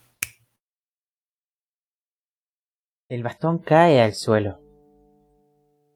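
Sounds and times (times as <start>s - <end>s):
crisp finger snap: 0.0s - 0.4s
speech: 3.1s - 4.6s.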